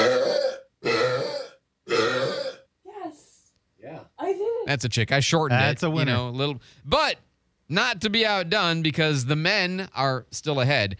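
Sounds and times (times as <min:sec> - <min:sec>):
woman burping loudly: 0:00.0 - 0:02.7
speech: 0:04.7 - 0:10.9.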